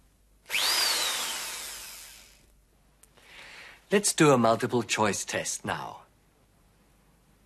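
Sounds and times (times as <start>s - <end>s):
high-pitched dentist's drill whirring during repair: 0.5s - 2.5s
speech: 3.9s - 6.0s.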